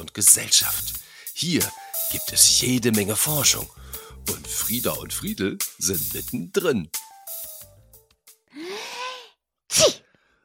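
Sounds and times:
speech: 0:00.0 - 0:07.0
sneeze: 0:09.7 - 0:10.1.

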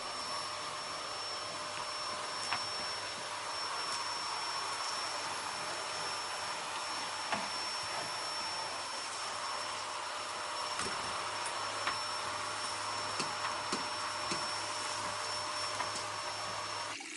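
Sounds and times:
vacuum cleaner running over a Persian rug in a living room: 0:00.0 - 0:17.0.

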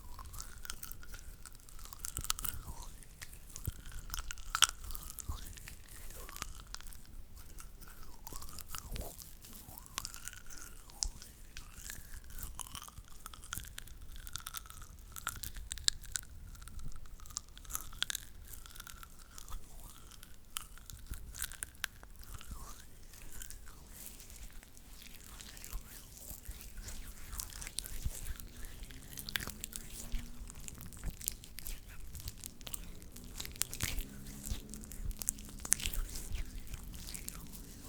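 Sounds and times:
hands making dry crackling and crunching noises: 0:00.0 - 0:37.8.

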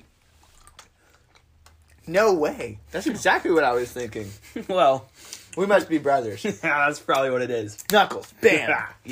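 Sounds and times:
chewing crunchy gum: 0:00.2 - 0:02.1
speech: 0:02.1 - 0:09.1.

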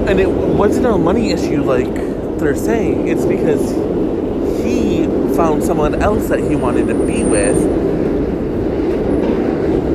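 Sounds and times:
train rumbling past: 0:00.0 - 0:09.9
train wheels clattering on rails: 0:00.0 - 0:09.9
speech: 0:00.1 - 0:04.3, 0:05.4 - 0:07.9.

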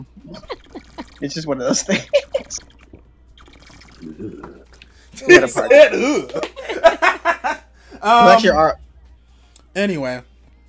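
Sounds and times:
speech: 0:00.0 - 0:00.6, 0:01.2 - 0:02.7, 0:05.2 - 0:06.6, 0:08.0 - 0:08.8, 0:09.8 - 0:10.3
laughter: 0:00.2 - 0:02.6, 0:05.2 - 0:07.8
person gulping water at the microphone as ASMR: 0:00.4 - 0:01.2, 0:02.4 - 0:04.8
swallowing sounds with small drippy clicks: 0:02.5 - 0:04.9.

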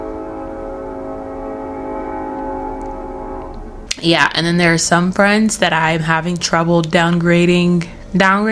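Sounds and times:
approaching train horn-like drone of layered tones: 0:00.0 - 0:05.4
speech: 0:04.0 - 0:08.5.

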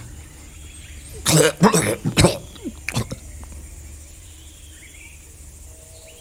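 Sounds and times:
man coughing harshly with wet hacking bursts: 0:01.2 - 0:03.2
speech: 0:01.3 - 0:02.2.

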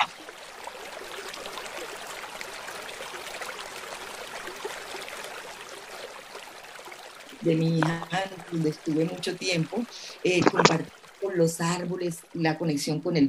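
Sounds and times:
river water rushing and babbling: 0:00.0 - 0:13.2
speech: 0:07.4 - 0:13.2.

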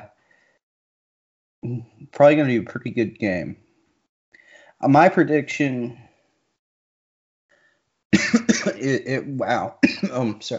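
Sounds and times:
strained voiced gasps and throat sounds: 0:00.2 - 0:00.6, 0:04.4 - 0:04.8
speech: 0:01.6 - 0:03.6, 0:04.8 - 0:06.1, 0:08.1 - 0:10.5
person hacking coughs in a coughing fit: 0:08.2 - 0:10.5.

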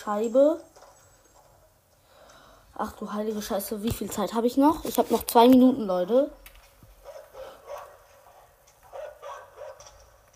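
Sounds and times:
speech: 0:00.0 - 0:00.7, 0:02.8 - 0:06.5
dog barking in sharp yaps: 0:07.0 - 0:10.0.

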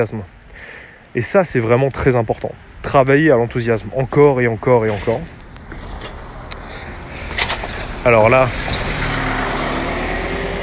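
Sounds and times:
speech: 0:00.0 - 0:05.4, 0:08.0 - 0:08.8
broadband traffic noise: 0:00.0 - 0:10.6
bus rumbling along the road with engine drone: 0:03.8 - 0:10.6.

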